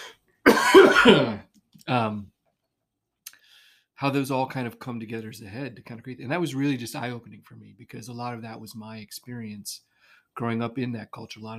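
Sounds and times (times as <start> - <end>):
person coughing with a rough burst and throaty hack: 0.0 - 1.5
speech: 1.0 - 2.3, 4.0 - 11.5.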